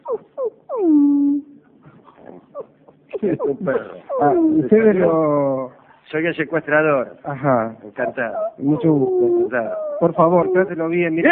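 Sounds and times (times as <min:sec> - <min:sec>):
dog whimpering over the telephone: 0:00.0 - 0:01.5, 0:02.2 - 0:05.1, 0:08.0 - 0:11.2
speech: 0:03.2 - 0:11.3.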